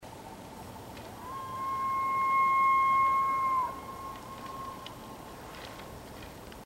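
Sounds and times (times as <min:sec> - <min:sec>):
elk bugle locator call: 0:01.2 - 0:05.8.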